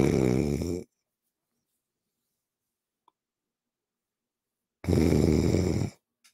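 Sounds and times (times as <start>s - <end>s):
man snoring over phone line: 0.0s - 0.9s, 4.8s - 6.0s.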